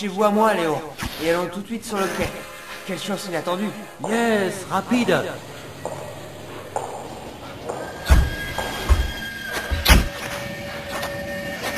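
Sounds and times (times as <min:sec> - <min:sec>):
speech: 0:00.0 - 0:06.0
thin steady high squeals: 0:00.6 - 0:11.7
train arriving at a station with clanks and thumps: 0:02.4 - 0:11.7.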